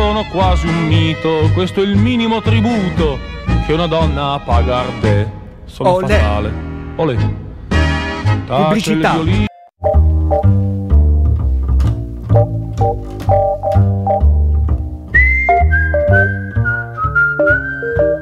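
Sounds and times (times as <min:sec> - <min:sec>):
steady rhythmic bass: 0:00.0 - 0:08.8, 0:09.8 - 0:18.1
bouncy plucked instrumental accompaniment: 0:00.0 - 0:18.1
speech: 0:00.2 - 0:07.4, 0:08.2 - 0:09.5
bright whistled tune: 0:15.1 - 0:18.1.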